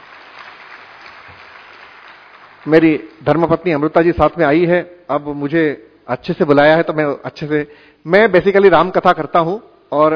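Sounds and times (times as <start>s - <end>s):
audience clapping at a spiritual talk: 0.0s - 3.4s
speech: 2.6s - 10.1s.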